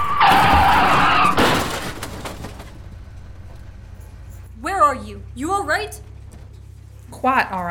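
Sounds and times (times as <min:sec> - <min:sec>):
tires squealing as a car swerves and skids at speed: 0:00.0 - 0:02.0
speech: 0:07.2 - 0:07.6.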